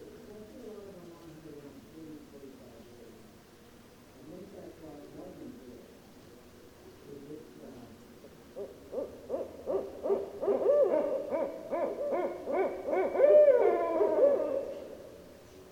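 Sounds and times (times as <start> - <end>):
barred owl hooting: 8.3 - 15.7.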